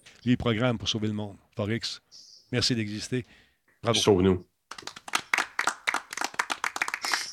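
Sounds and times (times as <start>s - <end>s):
speech: 0.2s - 5.0s
small group hand clapping: 4.7s - 7.3s.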